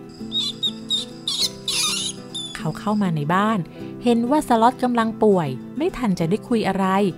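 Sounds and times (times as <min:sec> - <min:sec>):
soft musical background: 0:00.0 - 0:07.1
mouse squeaking: 0:00.2 - 0:03.0
speech: 0:02.6 - 0:07.1.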